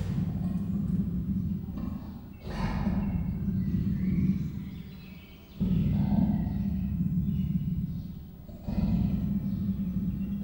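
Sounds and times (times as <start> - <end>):
captive female Persian leopard making grating rumbles at a zoo in Miskolc, Hungary: 0.0 - 10.4.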